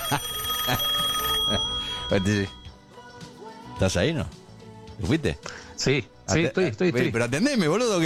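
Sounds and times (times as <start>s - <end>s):
steady electronic telephone ringing tone: 0.0s - 2.8s
speech: 0.1s - 0.9s, 2.1s - 2.6s, 3.8s - 4.4s, 5.0s - 8.0s.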